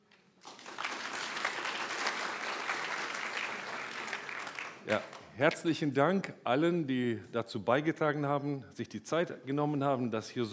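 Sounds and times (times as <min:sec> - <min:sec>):
audience applause with many hands clapping: 0:00.4 - 0:05.3
speech: 0:04.9 - 0:10.5.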